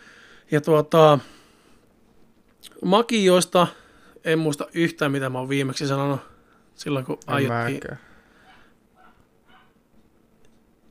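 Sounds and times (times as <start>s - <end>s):
low hum: 0.0s - 10.8s
speech: 0.5s - 1.4s, 2.7s - 8.1s
dog barking loudly outside in yard: 8.4s - 9.8s.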